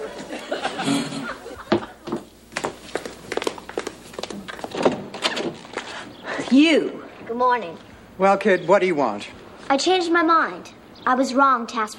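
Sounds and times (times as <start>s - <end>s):
studio audience chuckling and laughing: 0.0s - 2.0s
door opening to answer a visitor: 4.3s - 6.0s
speech: 6.6s - 11.9s.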